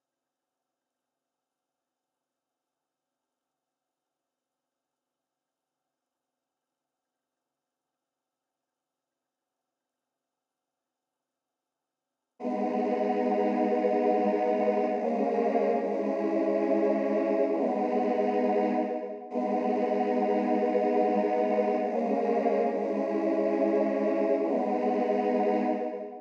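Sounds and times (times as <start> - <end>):
low choir melody in G sharp minor: 12.4 - 26.1.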